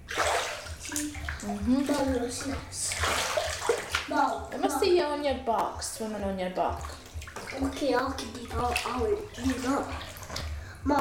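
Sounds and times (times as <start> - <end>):
water splashing and sloshing over the top of a bathtub: 0.0 - 10.9
child's voice: 0.9 - 3.0, 4.1 - 4.9, 7.5 - 10.0
speech: 1.4 - 3.2, 4.1 - 10.1.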